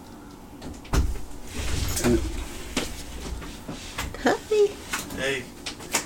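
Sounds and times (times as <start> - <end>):
door creaking as it swings: 0.6 - 4.2
speech: 2.0 - 2.3.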